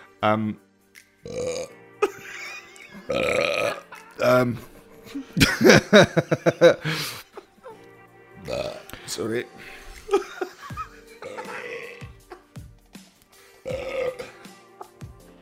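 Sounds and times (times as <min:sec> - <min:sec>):
speech: 0:00.2 - 0:00.6, 0:01.2 - 0:01.8, 0:03.0 - 0:03.5, 0:04.2 - 0:07.2, 0:08.5 - 0:10.2
man burping, edited into a mashup: 0:01.2 - 0:02.2, 0:03.0 - 0:04.6, 0:08.4 - 0:08.9, 0:11.2 - 0:12.3, 0:13.6 - 0:14.4
chuckling and laughter: 0:02.0 - 0:07.5, 0:10.1 - 0:12.5.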